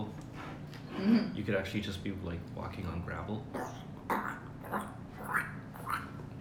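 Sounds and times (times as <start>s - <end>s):
speech: 1.4s - 3.9s
voice imitating a cartoon duck with gargly squawks: 3.6s - 6.2s.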